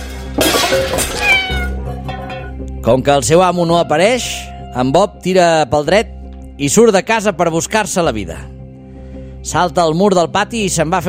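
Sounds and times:
speech: 0.7s - 1.5s, 2.8s - 8.6s, 9.4s - 11.0s
old hungry house cat meowing: 1.1s - 2.4s.

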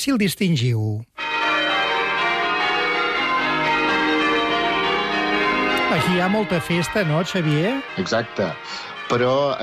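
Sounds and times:
speech: 0.0s - 1.2s, 5.9s - 9.6s
traditional English church bells pealing: 1.2s - 9.6s.

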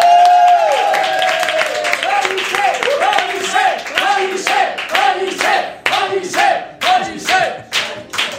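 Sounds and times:
audience clapping in a steady rhythm: 0.0s - 8.3s
crowd chanting and shouting: 2.0s - 8.3s.

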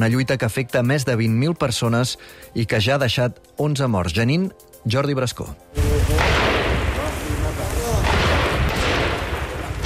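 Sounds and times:
speech: 0.0s - 5.7s
dense rumbling noise: 5.8s - 9.8s
gunshot bursts in a refugee camp: 5.8s - 9.8s.

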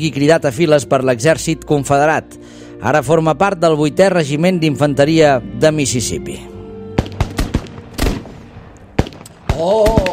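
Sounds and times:
speech: 0.0s - 6.5s, 9.6s - 10.0s
battle gunfire on a front line: 7.0s - 10.1s
person crying out: 9.6s - 10.1s.

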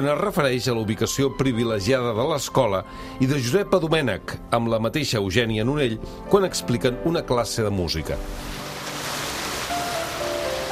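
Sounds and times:
speech: 0.0s - 8.6s
steady broad rushing of sea waves: 8.2s - 10.7s.

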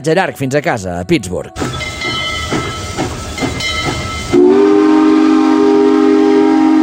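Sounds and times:
speech: 0.0s - 2.0s
steam train chugging: 1.6s - 6.8s
steam train whistle blasting: 3.6s - 6.8s.

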